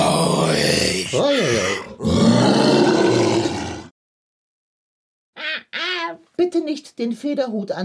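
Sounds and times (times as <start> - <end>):
person in a bear costume growling and roaring like a bear: 0.0 - 3.9
short higher-pitched vocal cries: 5.4 - 6.2
speech: 6.7 - 7.8.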